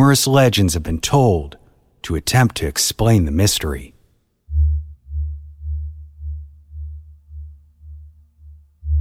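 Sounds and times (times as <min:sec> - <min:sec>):
speech: 0:00.0 - 0:03.9
deep mysterious low hum from the river: 0:04.5 - 0:09.0.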